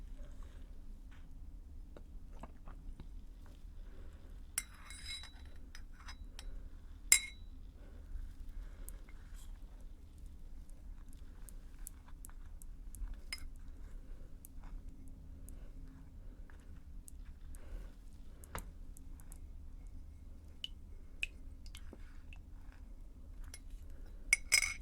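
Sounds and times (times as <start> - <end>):
low steady hum: 0.0 - 24.8
spoon stirring tea in a cup: 4.6 - 6.5, 7.1 - 7.5, 24.4 - 24.8.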